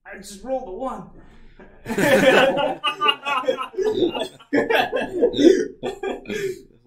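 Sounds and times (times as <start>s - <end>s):
speech: 0.2s - 6.7s
laughter: 1.6s - 6.6s
person faking a bout of coughing: 3.4s - 6.7s.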